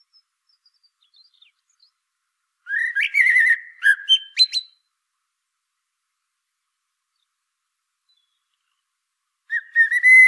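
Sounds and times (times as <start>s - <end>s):
common blackbird Turdus merula whistling a fluted phrase: 2.7s - 4.8s, 9.5s - 10.2s.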